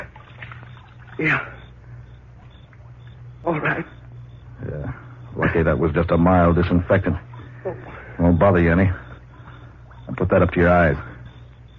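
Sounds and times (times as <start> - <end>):
cloth plunged into the water of a water trough: 0.0 - 1.3
low steady hum: 0.0 - 11.7
speech: 1.2 - 1.6, 3.4 - 4.0, 4.7 - 9.0, 10.2 - 11.1.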